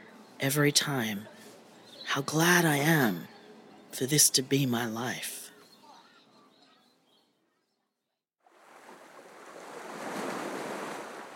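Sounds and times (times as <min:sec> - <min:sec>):
speech: 0:00.4 - 0:01.4, 0:02.1 - 0:03.3, 0:03.9 - 0:05.4
ocean waves washing on a windy winter beach shore: 0:08.4 - 0:11.3.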